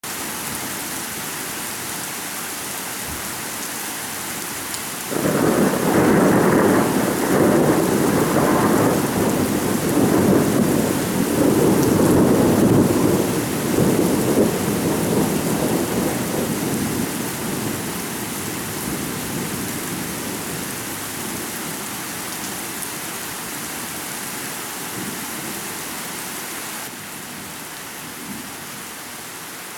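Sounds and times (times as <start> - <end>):
thunderstorm: 5.1 - 21.3.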